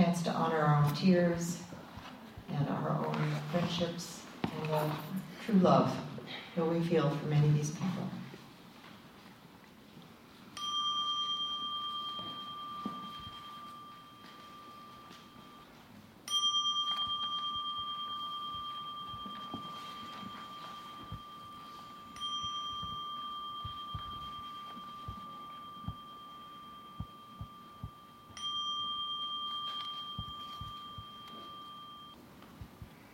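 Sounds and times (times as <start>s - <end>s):
speech: 0.2s - 1.8s, 2.5s - 8.2s
meditation bell struck and ringing: 10.5s - 32.3s.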